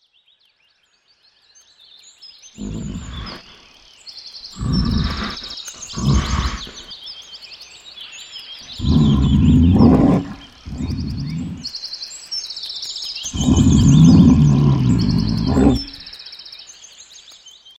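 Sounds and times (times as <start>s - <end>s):
bear: 2.6s - 3.6s, 4.5s - 6.9s, 8.6s - 11.7s, 13.2s - 16.2s.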